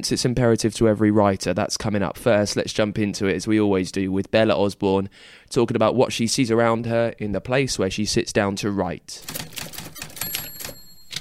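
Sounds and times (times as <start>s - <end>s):
speech: 0.0s - 9.6s
typing on a clicky mechanical keyboard: 9.2s - 11.1s.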